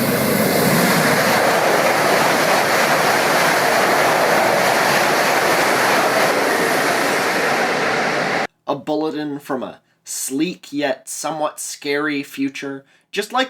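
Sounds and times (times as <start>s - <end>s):
high-speed train roaring past: 0.0s - 8.5s
speech: 9.5s - 13.4s.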